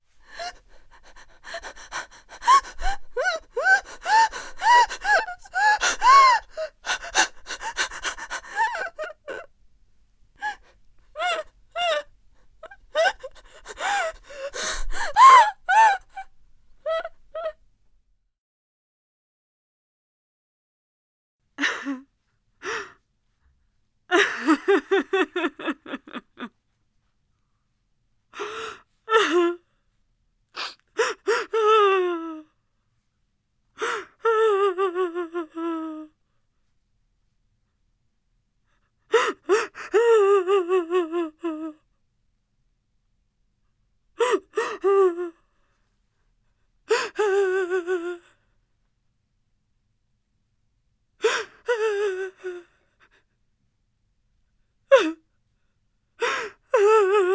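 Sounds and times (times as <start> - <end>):
girl sobbing: 0.2 - 9.5, 10.4 - 17.6, 24.1 - 26.5, 28.4 - 29.6, 31.0 - 32.5, 33.8 - 36.1, 39.1 - 41.8, 44.2 - 45.4, 46.9 - 48.4, 51.2 - 53.2, 56.2 - 57.3.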